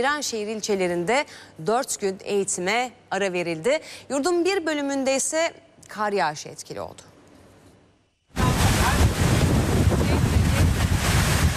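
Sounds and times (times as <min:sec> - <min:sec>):
speech: 0:00.0 - 0:07.1
storm wind roaring during a tornado and heavy downpour in Şanlıurfa: 0:08.4 - 0:11.5.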